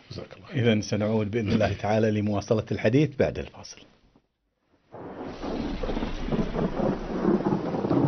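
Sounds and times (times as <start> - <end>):
speech: 0.2 - 3.9
deep rumble of thunder: 4.9 - 8.0
steady rain pouring down: 4.9 - 8.0.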